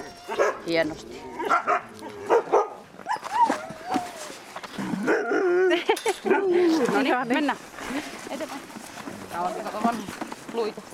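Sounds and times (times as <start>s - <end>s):
sled dogs yipping, whining and howling: 0.0s - 5.9s
pack of sled dogs barking excitedly before feeding: 0.3s - 0.8s, 1.4s - 3.6s
speech: 0.7s - 2.2s, 6.1s - 8.8s, 9.4s - 10.9s.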